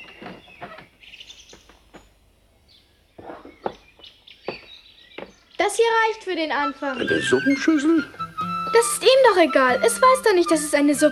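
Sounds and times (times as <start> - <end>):
small bird chirping: 0.0 - 5.8
speech: 5.7 - 11.1.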